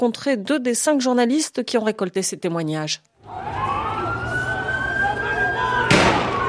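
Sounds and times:
speech: 0.0s - 3.7s
noisy street crowd during a protest in Istanbul Turkey: 3.2s - 6.4s
police sirens wailing during a protest in Istanbul Turkey: 3.2s - 6.4s.

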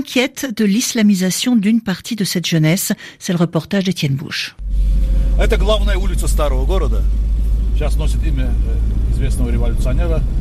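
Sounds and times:
speech: 0.0s - 10.3s
car engine droning uphill through old town heard from inside the vehicle: 4.6s - 10.3s.

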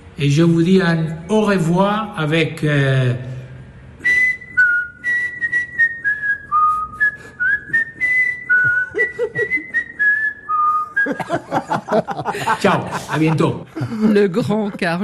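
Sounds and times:
speech: 0.2s - 3.3s, 11.3s - 15.0s
person whistling a short lilting tune: 4.0s - 11.4s
laughter: 8.6s - 10.0s, 10.8s - 15.0s.

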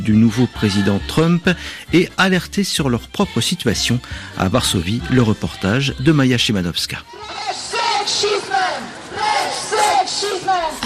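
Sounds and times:
speech: 0.0s - 8.3s
large protest crowd chanting an anti-sexism slogan outdoors in Warsaw Poland: 7.0s - 10.8s.

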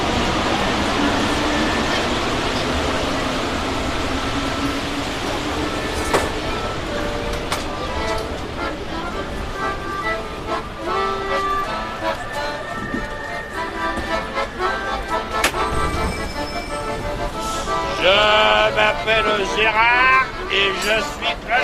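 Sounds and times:
subway car rolling with a rumbling roar: 0.0s - 21.6s
faint squealing tones of a subway car: 15.8s - 17.1s.

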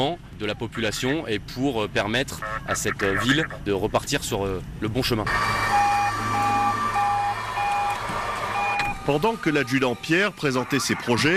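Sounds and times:
speech: 0.0s - 5.8s, 9.0s - 11.3s
reversing alarm beeps at a forward military base: 5.3s - 9.9s.

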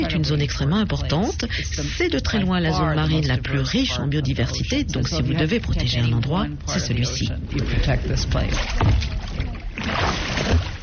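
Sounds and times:
speech: 0.1s - 10.7s
water lapping and sloshing against small boats in a bay: 3.7s - 10.8s
soft knocks of small boats bobbing: 7.2s - 9.8s.

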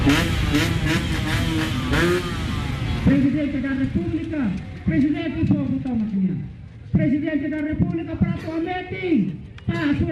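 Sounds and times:
scooter engines revving among a crowd at a presidential election gathering: 0.0s - 5.1s
speech: 3.1s - 10.1s.

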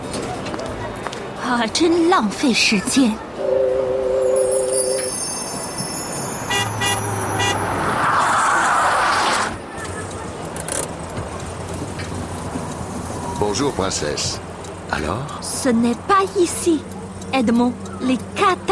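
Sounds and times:
video game car road noise: 0.0s - 18.7s
speech: 1.5s - 3.2s, 13.6s - 18.7s
video game car engine rumble: 5.4s - 18.7s.

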